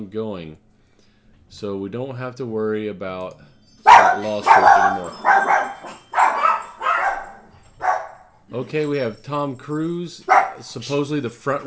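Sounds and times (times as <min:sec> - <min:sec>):
speech: 0:00.0 - 0:00.6, 0:01.5 - 0:06.0, 0:08.5 - 0:11.6
dogs barking: 0:03.9 - 0:08.4, 0:10.3 - 0:10.7.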